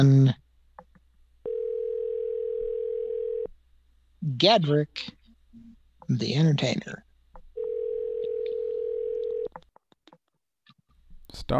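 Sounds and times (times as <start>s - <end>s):
speech: 0.0s - 0.4s, 4.3s - 5.2s, 6.1s - 7.0s, 11.3s - 11.5s
telephone dial tone while placing a call: 1.5s - 3.5s, 7.6s - 9.6s.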